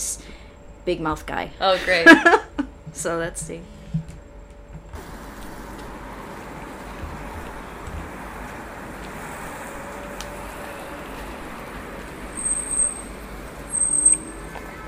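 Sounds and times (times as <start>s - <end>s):
speech: 0.8s - 4.0s
laughter: 1.8s - 2.7s
road traffic roar on a busy street: 4.9s - 14.8s.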